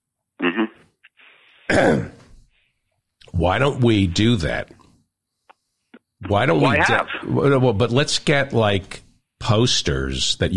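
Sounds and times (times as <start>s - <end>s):
gruff raspy throat-clearing cough: 1.7s - 2.2s
speech: 3.4s - 4.8s, 6.2s - 10.5s.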